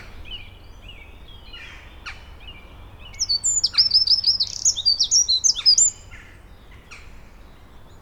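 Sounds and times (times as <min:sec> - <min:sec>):
Eurasian wren Troglodytes troglodytes trilling song: 0:00.3 - 0:06.2.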